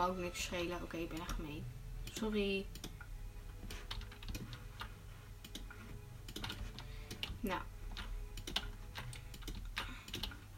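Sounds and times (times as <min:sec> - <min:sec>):
speech: 0:00.0 - 0:02.9, 0:07.4 - 0:07.7
steady low hum: 0:00.0 - 0:10.5
mouse clicking to farm pumpkins in a video game: 0:01.1 - 0:01.4, 0:03.7 - 0:10.5.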